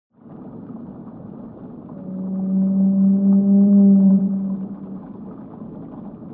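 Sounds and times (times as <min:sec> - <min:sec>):
rumbling background: 0:00.1 - 0:06.3
whale moan with low sustained tone: 0:01.9 - 0:05.4.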